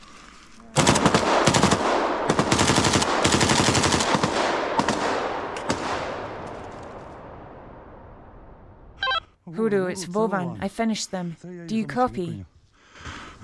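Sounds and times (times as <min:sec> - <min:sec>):
rifle gunfire at close range in automatic bursts: 0:00.8 - 0:06.4
speech: 0:09.7 - 0:12.6.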